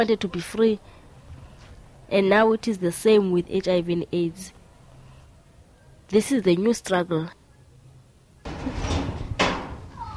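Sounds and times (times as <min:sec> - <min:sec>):
speech: 0:00.0 - 0:01.0, 0:02.1 - 0:04.6, 0:06.1 - 0:07.4
loud knocking on a door: 0:08.5 - 0:09.8.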